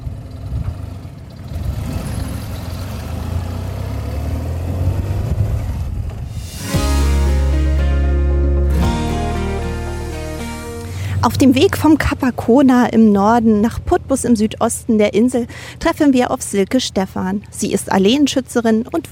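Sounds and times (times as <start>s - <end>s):
car engine while driving along a tree-lined country avenue road: 0.0s - 12.4s
road noise while driving along a tree-lined country avenue road: 0.0s - 19.1s
speech: 11.2s - 19.1s.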